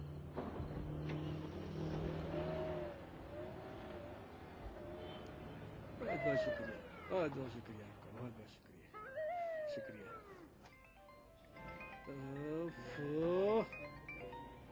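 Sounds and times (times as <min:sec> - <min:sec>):
car engine idling and revving as the vehicle pulls off: 0:00.1 - 0:06.1
speech: 0:06.3 - 0:08.7, 0:09.7 - 0:10.6, 0:12.1 - 0:14.3.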